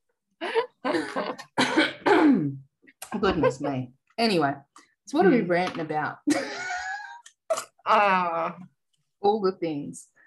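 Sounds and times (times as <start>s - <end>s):
harsh coughs: 0.9s - 2.6s
speech: 3.2s - 6.6s, 7.9s - 10.1s.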